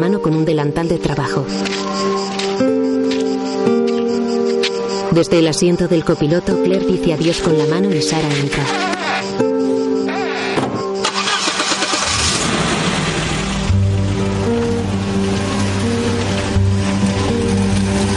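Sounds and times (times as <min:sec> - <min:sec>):
speech: 0:00.0 - 0:02.4, 0:05.2 - 0:09.0
music playing: 0:00.0 - 0:18.1
car engine starting: 0:10.1 - 0:18.1
car engine idling while reversing: 0:11.0 - 0:18.1.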